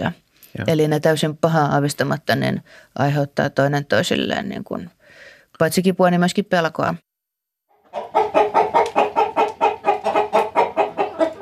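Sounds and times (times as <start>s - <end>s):
speech: 0.0s - 7.1s
flock of hens clucking in a floor-housing henhouse: 7.7s - 11.4s.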